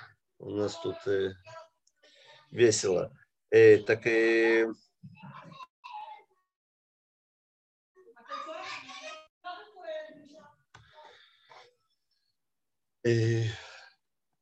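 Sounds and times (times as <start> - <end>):
speech: 0.4 - 1.6, 2.5 - 5.4, 13.0 - 13.6
children shouting and squealing: 8.2 - 9.3.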